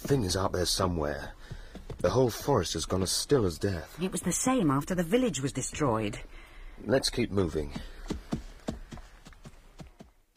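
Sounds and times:
horses' hooves clopping while riding through a forest: 0:00.0 - 0:03.6, 0:07.4 - 0:10.3
speech: 0:00.1 - 0:08.2.

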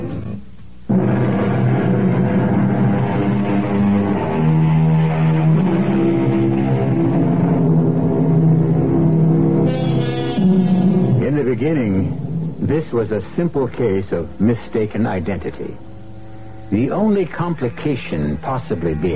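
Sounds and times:
car engine starting and revving: 0:00.9 - 0:12.6
speech: 0:13.0 - 0:15.9, 0:16.7 - 0:19.1.

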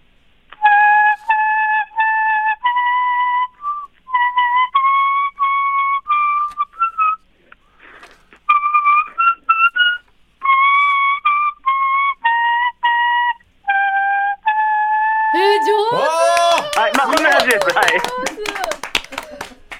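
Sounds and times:
folk melody played on a yabukoji leaf whistle: 0:00.6 - 0:07.2, 0:08.5 - 0:15.6
laughter: 0:15.4 - 0:19.7.

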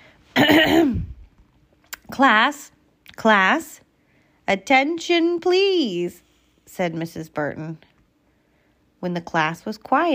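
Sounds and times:
woman clearing her throat: 0:00.4 - 0:01.2
speech: 0:02.2 - 0:03.8, 0:04.5 - 0:07.9, 0:09.0 - 0:10.1.

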